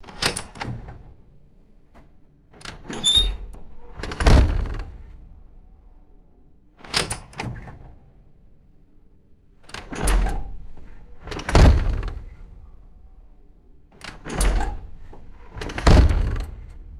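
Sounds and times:
heavy glass door opening: 2.7s - 5.6s, 9.8s - 13.1s, 14.1s - 16.9s.

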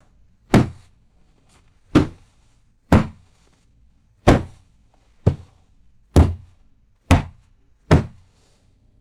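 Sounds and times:
hard dull thuds on a cloth sofa: 0.5s - 0.9s, 1.9s - 2.3s, 2.9s - 3.4s, 4.3s - 4.6s, 5.2s - 5.6s, 6.2s - 8.3s.

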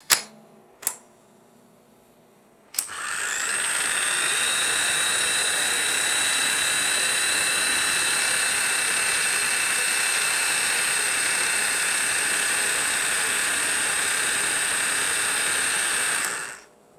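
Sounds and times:
electric ball pump motor starting and stopping: 2.8s - 16.7s.

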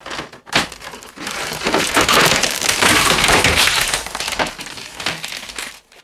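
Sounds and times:
heavy wooden pallets crushing and splintering: 0.0s - 6.0s.

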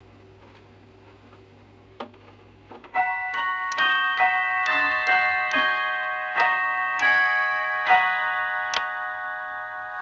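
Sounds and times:
bracket clock quarter hour chime: 3.0s - 10.0s.

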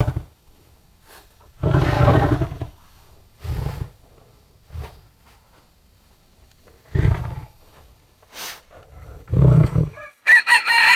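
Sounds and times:
tiger sniffing: 0.0s - 10.0s
distant rooster crowing: 10.0s - 10.9s.

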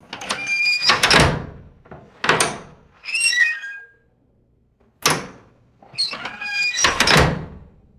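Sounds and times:
squeaky metal jail door latching shut: 0.1s - 1.6s, 2.2s - 3.9s, 5.0s - 7.6s.

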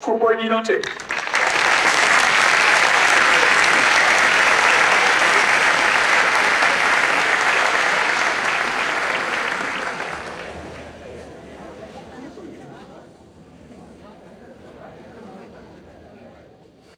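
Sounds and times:
large audience applause: 0.8s - 12.3s
laughter: 0.9s - 16.4s
crowd murmur: 1.0s - 16.9s.

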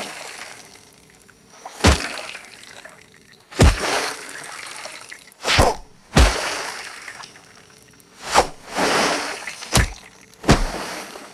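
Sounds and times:
wet canvas fabric lifted and dropped: 1.8s - 2.1s, 3.6s - 3.9s, 5.5s - 6.5s, 8.3s - 9.0s, 9.7s - 11.0s.

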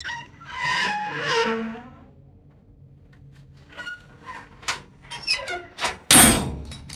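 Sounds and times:
harsh metallic squeaks: 0.0s - 2.1s, 3.7s - 6.4s
metallic groans: 0.0s - 2.5s, 3.5s - 6.6s.

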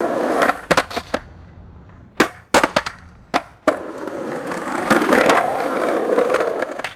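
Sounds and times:
skateboard ollie jumping and landing on cement: 0.0s - 6.9s.

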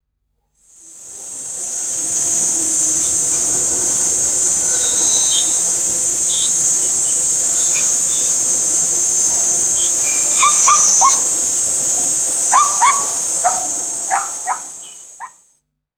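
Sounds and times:
forest ambience: 0.8s - 15.4s
gibbon barking calls: 7.1s - 15.3s.

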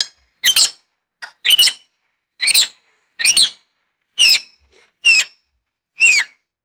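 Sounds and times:
sharp coatimundi chirps and squeaks: 0.4s - 0.8s, 1.4s - 1.8s, 2.4s - 3.6s, 4.2s - 5.4s, 6.0s - 6.3s.

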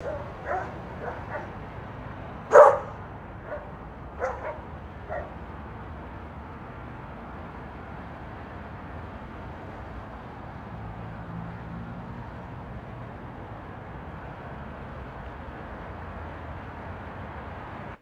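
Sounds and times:
distant dog barking: 0.0s - 5.4s
traffic hum: 0.0s - 17.9s.

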